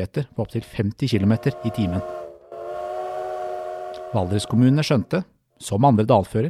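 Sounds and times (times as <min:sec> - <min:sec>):
speech: 0:00.0 - 0:02.2, 0:04.1 - 0:06.4
steam locomotive whistle: 0:01.1 - 0:05.2.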